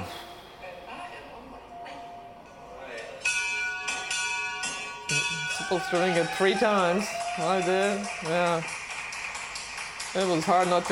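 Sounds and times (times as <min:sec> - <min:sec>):
handheld bell ringing to mark the end of a patient's treatment: 0:03.2 - 0:08.8
speech: 0:05.6 - 0:08.8, 0:10.1 - 0:10.8.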